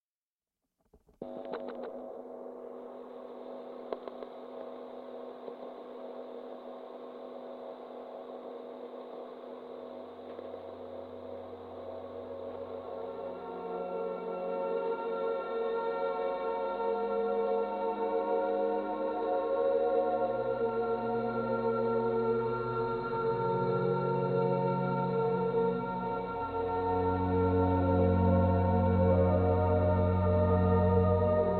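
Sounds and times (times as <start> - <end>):
theremin: 10.0 - 31.5.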